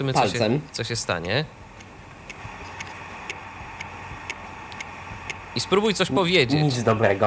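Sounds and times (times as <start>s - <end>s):
speech: 0.0s - 1.6s, 5.6s - 7.2s
low hum: 0.0s - 7.2s
steady mechanical ticking: 1.1s - 6.4s.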